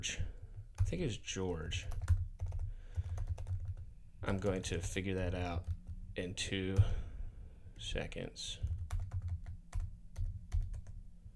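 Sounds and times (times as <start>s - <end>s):
speech: 0.0s - 0.3s, 0.9s - 2.0s, 4.2s - 7.1s, 7.8s - 8.7s
low steady hum: 0.0s - 11.3s
computer keyboard typing as a password is entered: 0.2s - 6.0s, 6.7s - 7.0s, 8.6s - 11.0s.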